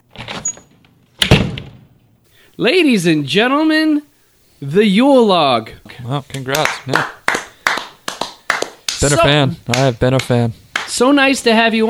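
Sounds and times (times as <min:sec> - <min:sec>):
heavy door thunk: 0:01.2 - 0:01.9
speech: 0:02.6 - 0:07.2, 0:09.0 - 0:11.8.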